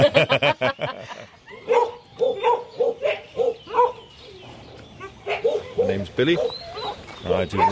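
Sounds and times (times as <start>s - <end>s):
laughter: 0.0s - 1.6s
working dogs for rabbit pest control barking: 1.5s - 7.7s
speech: 6.2s - 6.6s, 7.4s - 7.7s.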